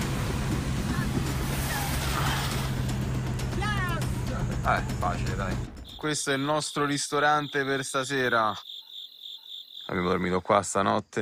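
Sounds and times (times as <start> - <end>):
water rushing and splashing while crossing a river: 0.0 - 4.3
low engine-like drone: 0.0 - 6.0
speech: 4.7 - 8.7, 9.9 - 11.2.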